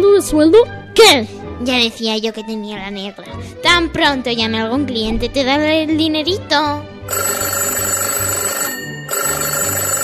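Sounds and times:
speech: 0.2s - 8.0s
telephone ringing with a bright electronic trill: 7.1s - 10.0s.

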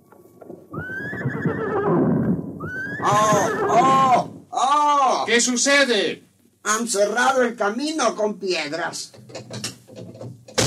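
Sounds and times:
horses neighing as a stagecoach stops abruptly: 0.7s - 5.2s
speech: 3.1s - 3.9s, 5.3s - 9.6s.

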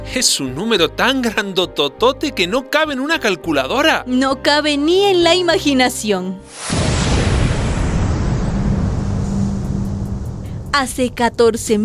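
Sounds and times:
speech: 0.1s - 6.8s, 10.8s - 11.8s
massive deep explosion rumbling: 6.5s - 11.8s.

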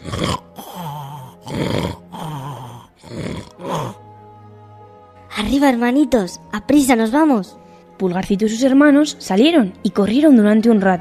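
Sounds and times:
person performing exaggerated ogre snoring: 0.0s - 4.0s
speech: 5.5s - 10.9s.

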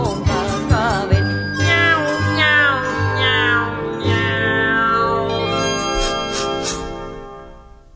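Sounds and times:
bright tinkling music accompaniment: 0.0s - 7.4s
singing voices imitating a cat's meow: 1.6s - 5.4s.

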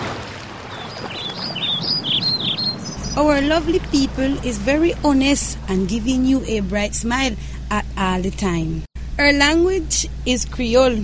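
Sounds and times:
steady wash of water or wind noise: 0.0s - 8.9s
birds singing warbling chirps on Karen Island: 0.7s - 5.7s
speech: 3.2s - 11.0s.

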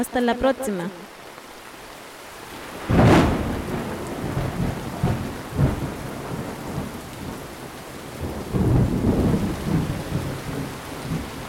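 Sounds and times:
speech: 0.0s - 1.2s
heavy rain: 0.0s - 11.4s
thunderclap: 2.8s - 7.5s, 8.2s - 11.4s.

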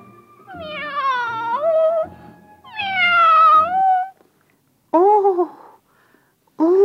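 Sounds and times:
kitten meowing plaintively: 0.5s - 2.1s, 2.7s - 4.1s.

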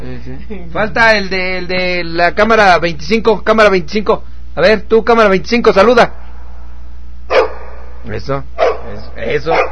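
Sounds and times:
speech: 0.2s - 6.2s, 8.0s - 9.7s
dog barking: 7.3s - 7.9s, 8.6s - 9.7s.

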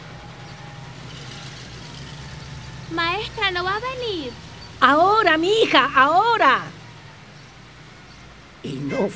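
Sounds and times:
engines of big trucks heading to a town rumbling: 0.0s - 9.1s
speech: 2.9s - 6.7s, 8.6s - 9.1s.

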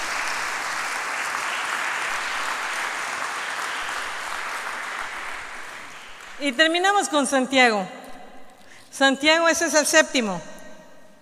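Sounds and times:
audience applause: 0.0s - 6.6s
speech: 6.4s - 8.0s, 8.9s - 10.5s.

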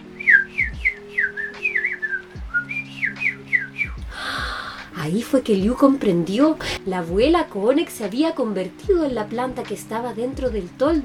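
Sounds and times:
birds chirping and whistling: 0.0s - 5.0s
low sustained hum: 0.0s - 7.4s
speech: 5.0s - 11.0s.

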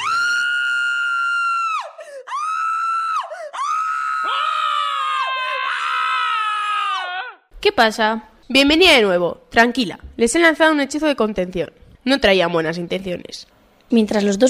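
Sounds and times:
loud shrill screams: 0.0s - 7.5s
speech: 7.6s - 14.4s.

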